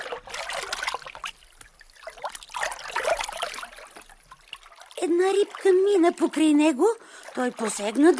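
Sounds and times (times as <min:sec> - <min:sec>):
river water sloshing as someone wades carefully: 0:00.0 - 0:08.1
speech: 0:05.0 - 0:08.1.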